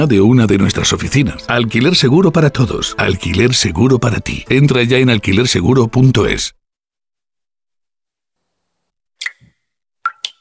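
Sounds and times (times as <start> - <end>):
speech: 0.0 - 6.6
water dripping from a shower: 9.2 - 10.4.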